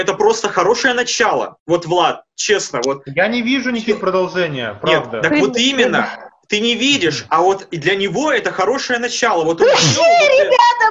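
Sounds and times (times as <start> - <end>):
speech: 0.0 - 10.9
sharp sneeze: 9.7 - 10.2.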